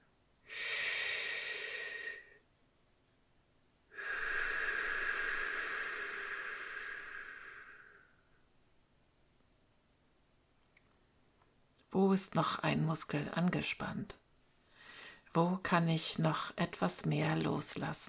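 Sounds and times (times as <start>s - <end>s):
slow deep breaths into the belly: 0.4s - 2.4s, 3.9s - 8.4s, 14.6s - 15.3s
speech: 12.0s - 14.2s, 15.4s - 18.0s.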